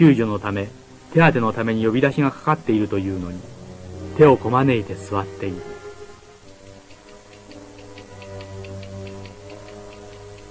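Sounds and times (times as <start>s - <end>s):
speech: 0.0s - 3.6s, 4.2s - 5.8s
low continuous hum: 0.0s - 10.4s
clock ticking: 6.4s - 10.4s.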